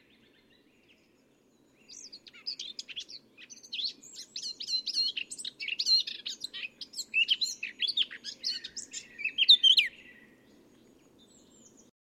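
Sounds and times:
Eurasian blackcap Sylvia atricapilla warbling song: 0.0s - 11.9s.

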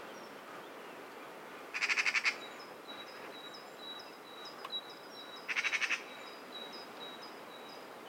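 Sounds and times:
Eurasian magpie (Pica pica) giving short harsh calls: 1.7s - 2.4s, 5.5s - 6.1s.

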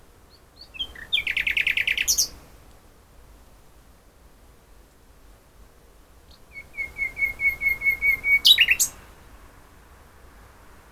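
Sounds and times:
common nightingale song phrase: 0.3s - 2.4s, 6.3s - 9.0s.

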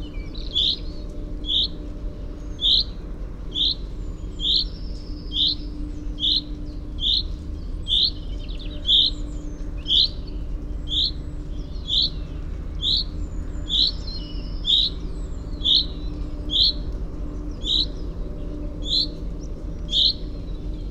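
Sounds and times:
faint bird notes: 0.0s - 20.8s
steady low drone: 0.0s - 20.8s.

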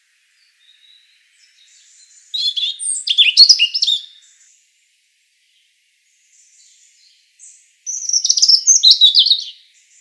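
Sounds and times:
European robin Erithacus rubecula singing: 0.4s - 4.6s, 6.3s - 9.9s.

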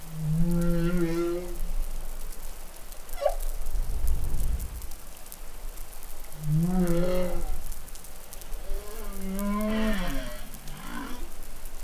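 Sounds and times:
humpback whale song in New Caledonia: 0.0s - 2.0s, 3.1s - 3.8s, 6.4s - 11.8s.

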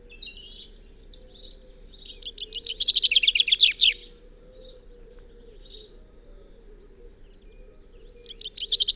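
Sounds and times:
common chaffinch Fringilla coelebs singing a rapid rattling phrase: 0.0s - 4.1s, 8.2s - 8.9s.

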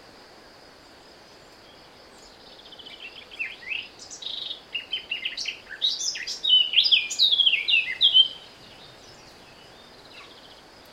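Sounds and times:
Eurasian blackcap Sylvia atricapilla warbling song: 2.8s - 10.5s.

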